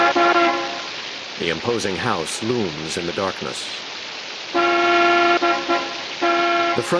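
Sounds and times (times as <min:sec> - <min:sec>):
car horn honking outside a house at night: 0:00.0 - 0:00.9, 0:04.6 - 0:06.9
heavy rain hiss at night: 0:00.0 - 0:06.9
speech: 0:01.4 - 0:04.0, 0:06.8 - 0:06.9.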